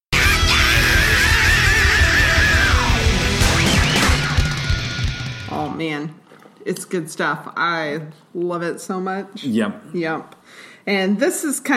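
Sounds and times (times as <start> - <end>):
long wavering high scream: 0.1 - 5.5
loud dense distorted electric guitars: 0.1 - 5.8
pounding drums: 0.2 - 5.6
speech: 5.9 - 11.7.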